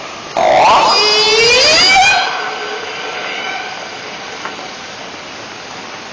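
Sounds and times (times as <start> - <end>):
orca: 0.4 - 5.2.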